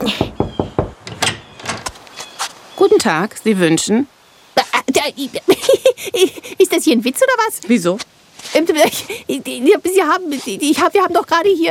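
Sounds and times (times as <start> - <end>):
knocking on a blue door: 0.0 - 1.5
speech: 3.0 - 4.2, 5.0 - 11.6.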